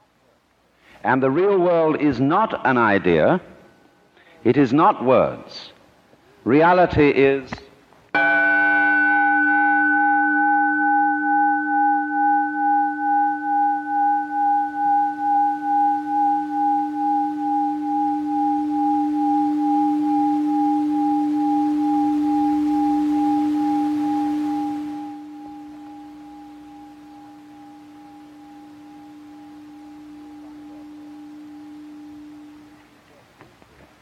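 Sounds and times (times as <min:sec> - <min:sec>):
speech: 0:01.0 - 0:03.5, 0:04.4 - 0:05.7, 0:06.4 - 0:07.6
gong or chime bell struck and ringing: 0:08.2 - 0:33.1.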